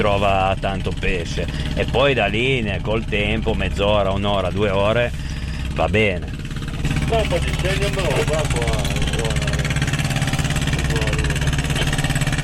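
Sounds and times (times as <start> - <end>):
speech: 0.0 - 6.4, 7.1 - 9.4
boat engine idling: 0.0 - 12.4.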